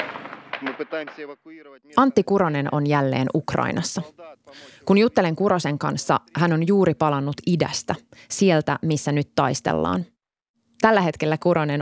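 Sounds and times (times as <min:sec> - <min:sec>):
assault rifle cartridges popping in a burning depot: 0:00.0 - 0:06.4
speech: 0:00.6 - 0:10.1, 0:10.8 - 0:11.8.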